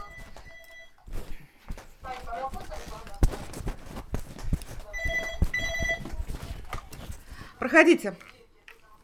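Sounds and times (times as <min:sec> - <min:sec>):
electronic doorbell ringing in high tones: 0:00.0 - 0:01.0, 0:05.0 - 0:06.1
shuffling movement: 0:00.0 - 0:08.4
speech: 0:07.6 - 0:08.3.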